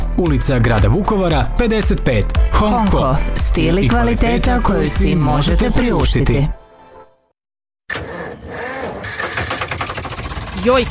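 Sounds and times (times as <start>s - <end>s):
speech: 0.2s - 6.6s, 10.6s - 10.8s
car engine running rough with a chugging uneven rattle: 9.2s - 10.8s.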